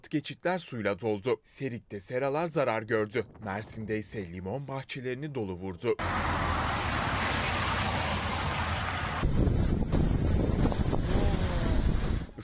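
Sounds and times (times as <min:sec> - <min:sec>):
speech: 0:00.1 - 0:06.5
storm-driven sea waves crashing in Istanbul: 0:06.0 - 0:10.3
strong storm wind buffeting the microphone in Istanbul: 0:06.3 - 0:12.4.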